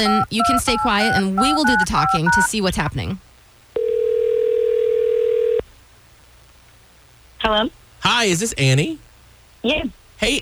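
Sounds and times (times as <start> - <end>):
electronic ringback tone from a phone line: 0.0 - 2.5, 3.8 - 5.6
speech: 0.0 - 3.3, 7.5 - 9.0, 9.6 - 10.4.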